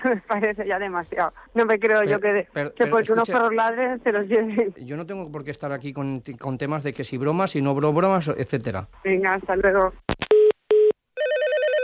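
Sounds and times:
speech: 0:00.0 - 0:10.3
telephone ringing with a warbling electronic trill: 0:10.3 - 0:11.8.

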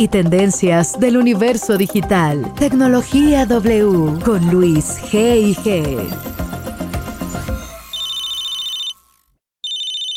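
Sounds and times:
speech: 0:00.0 - 0:06.4
telephone ringing with an electronic trill: 0:05.4 - 0:10.1.

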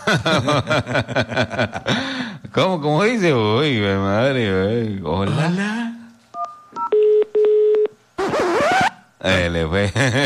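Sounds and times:
speech: 0:00.1 - 0:05.8, 0:09.2 - 0:10.2
quick dual-pitch telephone keypad beeps: 0:06.4 - 0:07.9
two long steady telephone tones: 0:06.4 - 0:08.0.

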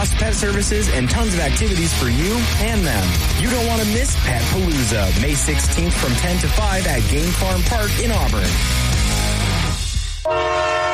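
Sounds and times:
speech: 0:00.0 - 0:08.9, 0:10.3 - 0:10.7
Amtrak Cascades passenger train multi-toned horn blast: 0:10.2 - 0:10.9.

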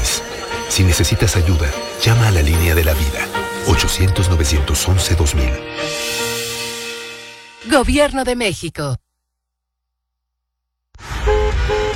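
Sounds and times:
speech: 0:00.8 - 0:06.4, 0:07.6 - 0:09.0, 0:11.0 - 0:11.8
car horns honking in a traffic jam at a red traffic light: 0:11.1 - 0:11.9.

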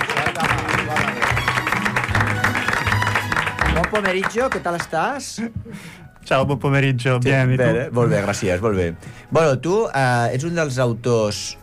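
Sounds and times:
audience applause: 0:00.0 - 0:05.2
speech: 0:04.0 - 0:11.6.

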